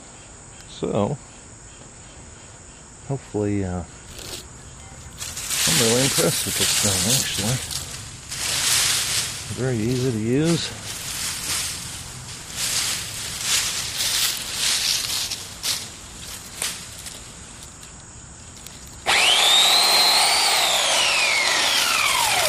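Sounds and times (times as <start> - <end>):
speech: 0.8 - 1.3, 3.1 - 4.0, 5.8 - 7.7, 9.5 - 10.8
branches crackling and rustling: 4.0 - 22.4
chainsaw cutting through branches: 5.2 - 15.4, 19.0 - 22.4.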